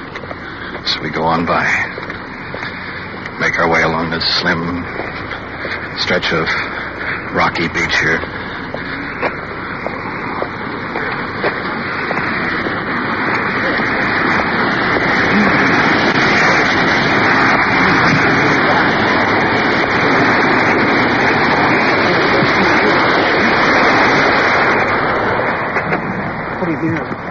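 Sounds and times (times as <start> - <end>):
waterfall roaring: 0.0 - 27.3
speech: 0.9 - 2.1, 3.4 - 8.3.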